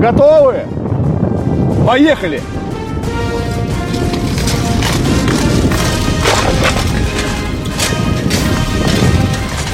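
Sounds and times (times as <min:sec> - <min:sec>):
speech: 0:00.0 - 0:01.1, 0:01.8 - 0:03.2
dense rumbling background: 0:00.0 - 0:09.7
horse galloping hard in a joust: 0:02.6 - 0:09.7
lance strike cracking impacts in jousting: 0:04.4 - 0:08.5.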